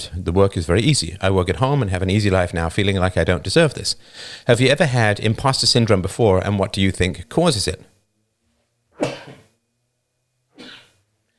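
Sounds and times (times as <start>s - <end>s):
speech: 0.0s - 7.9s
person sneezing: 9.0s - 9.6s, 10.6s - 11.0s.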